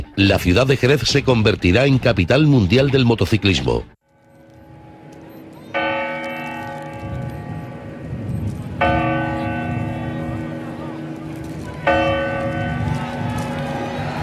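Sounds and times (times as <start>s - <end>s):
speech: 0.2s - 3.9s
clock bell striking chimes ringing in New Year: 4.2s - 13.6s.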